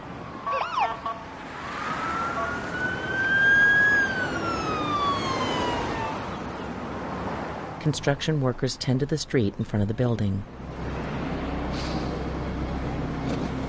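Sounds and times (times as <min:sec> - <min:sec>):
low traffic rumble: 0:00.0 - 0:13.6
ambulance siren wailing as it speeds past: 0:00.3 - 0:06.6
speech: 0:07.8 - 0:10.6.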